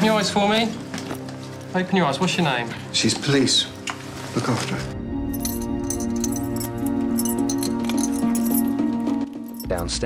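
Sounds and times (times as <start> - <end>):
speech: 0.1 - 0.9, 1.7 - 3.8, 4.4 - 4.9, 9.8 - 10.0
keys rattling and clinking against small glass jars on a coffee table: 5.3 - 9.9.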